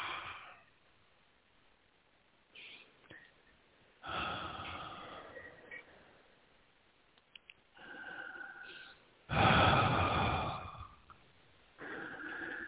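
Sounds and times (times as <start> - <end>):
slow deep breathing: 0.0 - 0.8, 4.0 - 6.4, 7.7 - 12.6.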